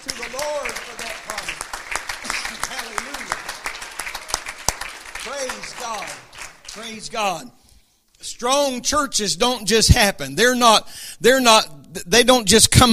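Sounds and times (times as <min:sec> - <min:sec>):
audience clapping hands in lively applause: 0:00.0 - 0:07.2
speech: 0:00.1 - 0:01.5, 0:05.4 - 0:07.6, 0:08.2 - 0:12.9.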